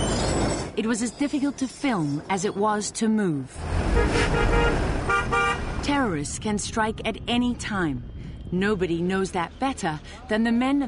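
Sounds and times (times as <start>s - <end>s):
speech: 0.8s - 4.9s, 5.8s - 10.8s
congested street traffic rumbling in Kabul: 2.2s - 10.8s
car horns honking in congested traffic: 3.9s - 5.8s.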